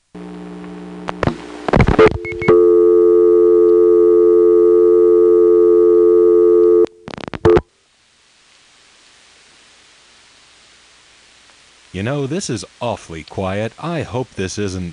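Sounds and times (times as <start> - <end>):
telephone dial tone: 2.0 - 7.0
speech: 12.0 - 14.9.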